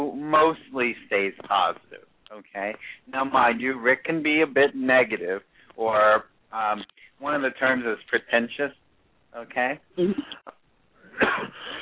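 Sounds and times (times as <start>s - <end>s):
speech: 0.3s - 10.6s, 11.2s - 11.8s
faint catch of breath: 2.7s - 3.1s
person with a dry throat coughing: 11.1s - 11.8s.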